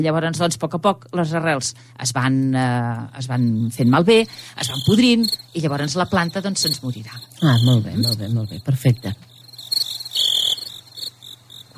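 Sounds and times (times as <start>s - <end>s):
speech: 0.0s - 9.3s
low steady hum: 0.0s - 11.7s
cricket chirping in a studio: 2.9s - 11.7s.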